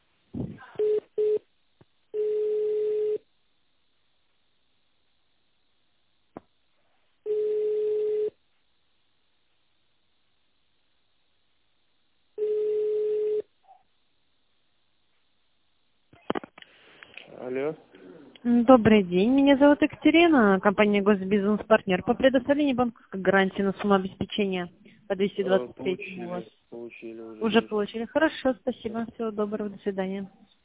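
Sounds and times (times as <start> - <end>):
telephone ringback tone while a call is connected: 2.2 - 3.2, 7.3 - 8.4, 12.4 - 13.5
speech: 17.5 - 30.6.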